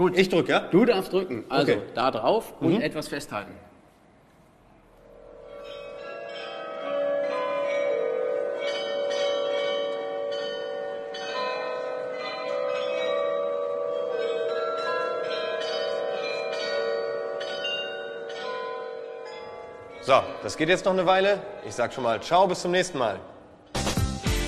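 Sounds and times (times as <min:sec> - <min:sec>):
speech: 0:00.0 - 0:03.7, 0:20.1 - 0:23.3
town hall tower glockenspiel bells playing a melody: 0:05.2 - 0:22.7.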